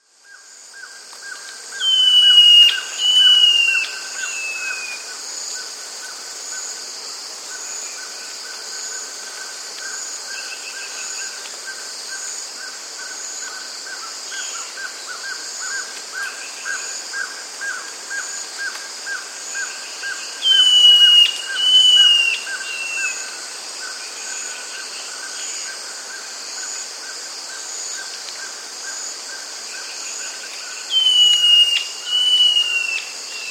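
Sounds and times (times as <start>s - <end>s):
Pale-Faced Antbird calling in South America: 1.8s - 4.8s, 20.4s - 23.2s, 30.9s - 33.4s.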